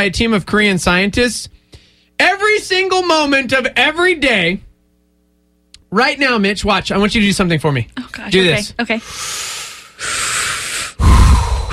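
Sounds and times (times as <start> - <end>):
speech: 0.0 - 1.6, 2.2 - 4.6, 5.9 - 10.2
sharp inhales through the nose: 9.0 - 11.7.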